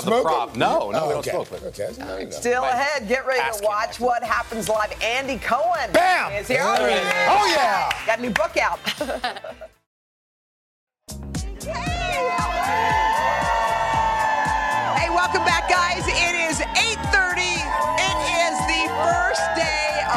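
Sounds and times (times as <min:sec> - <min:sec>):
speech: 0:00.0 - 0:09.6
laughter: 0:08.7 - 0:09.8
large outdoor crowd cheering and whooping with excited shouts: 0:11.6 - 0:20.1.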